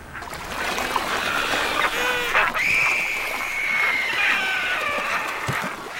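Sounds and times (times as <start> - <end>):
wandering albatross colony calling: 1.0 - 5.9
drawn-out wavering high cry of a wandering albatross: 1.4 - 5.5.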